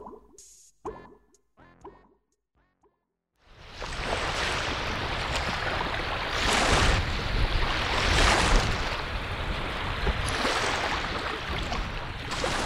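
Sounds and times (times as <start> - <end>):
lake waves washing against a shoreline: 3.6 - 12.6
gusty wind rumbling across the microphone: 3.8 - 12.6.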